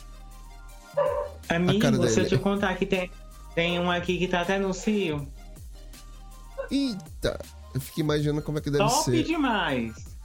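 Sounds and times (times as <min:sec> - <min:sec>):
neighbors' dog barking: 0:01.0 - 0:01.4
speech: 0:01.5 - 0:05.4, 0:06.7 - 0:10.1.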